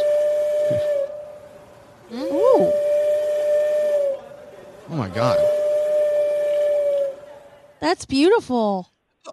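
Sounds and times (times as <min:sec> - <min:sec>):
walrus whistling in long piercing tones: 0:00.0 - 0:01.4, 0:02.1 - 0:04.2, 0:05.3 - 0:07.3
speech: 0:00.7 - 0:01.0, 0:05.0 - 0:05.5, 0:07.8 - 0:09.3
person exclaiming in amazement: 0:02.1 - 0:02.8.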